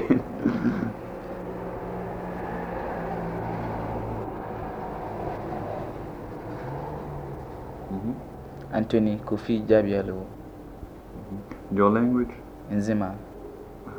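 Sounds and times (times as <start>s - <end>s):
laughter: 0.0s - 1.3s
droning car engine hums passing: 0.0s - 13.9s
rumbling traffic of vehicles on a nearby road: 0.0s - 13.9s
speech: 8.1s - 10.4s, 11.2s - 13.3s.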